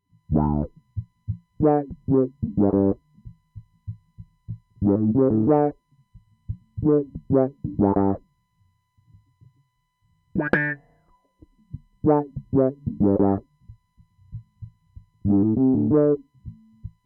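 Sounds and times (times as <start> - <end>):
wah effect: 0.3 - 3.0, 4.8 - 5.8, 6.8 - 8.2, 10.4 - 10.9, 12.0 - 13.5, 15.2 - 16.2.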